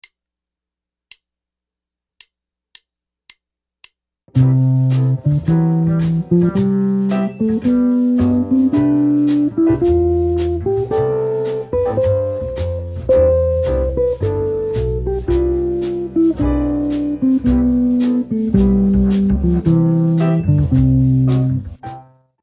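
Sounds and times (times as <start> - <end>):
guitar playing scale rhythms: 4.3 - 22.1.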